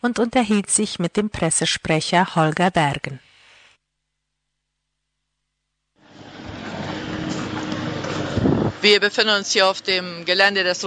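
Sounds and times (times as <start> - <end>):
speech: 0.0 - 3.3, 8.8 - 10.8
busy traffic noise on outdoor event grounds: 6.0 - 10.8.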